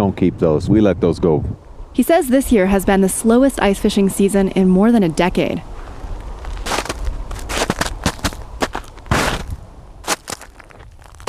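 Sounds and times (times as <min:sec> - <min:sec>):
speech: 0:00.0 - 0:05.7
footsteps crunching over a snow-covered frozen lake: 0:05.7 - 0:11.2.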